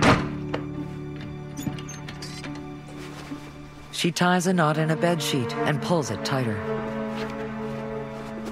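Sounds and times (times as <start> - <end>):
wooden armoire doors swinging shut: 0.0 - 3.0
speech: 4.0 - 6.9.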